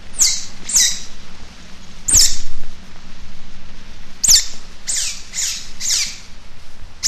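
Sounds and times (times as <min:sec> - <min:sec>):
low background hum: 0:00.0 - 0:07.0
Eurasian otter giving high-pitched chirping squeaks: 0:00.2 - 0:01.1, 0:02.1 - 0:02.4, 0:04.2 - 0:06.2.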